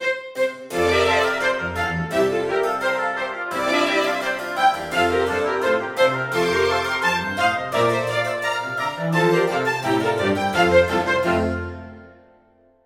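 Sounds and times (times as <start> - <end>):
chamber music: 0.0 - 12.8.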